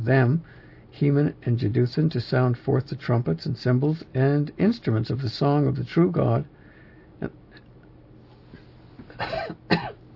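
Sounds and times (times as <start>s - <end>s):
speech: 0.0s - 6.6s, 7.2s - 7.4s
raspy coughs from a tickle in the throat: 9.1s - 10.0s.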